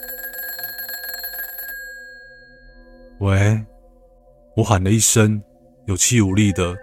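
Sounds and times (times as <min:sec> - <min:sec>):
old-style telephone bell ringing: 0:00.0 - 0:03.2
speech: 0:03.2 - 0:03.7, 0:04.6 - 0:06.8.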